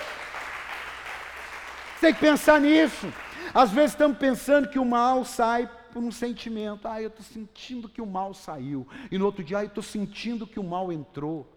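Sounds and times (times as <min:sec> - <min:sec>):
crowd applauding with many hands clapping: 0:00.0 - 0:04.0
speech: 0:02.0 - 0:11.5.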